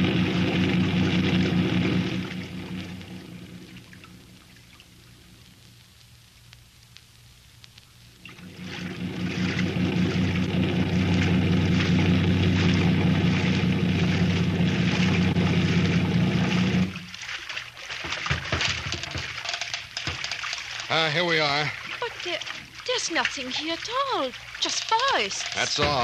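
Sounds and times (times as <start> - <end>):
boat engine drone motoring toward the mainland: 0.0 - 5.3, 8.3 - 17.3, 21.8 - 26.0
broadband rushing wash of boat over water: 0.0 - 5.3, 8.3 - 26.0
speech: 21.2 - 21.8, 23.0 - 26.0.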